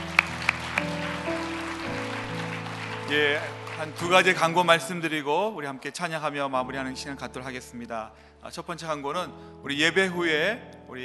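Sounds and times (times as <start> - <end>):
audience applauding: 0.0 - 5.0
speech: 3.1 - 11.0.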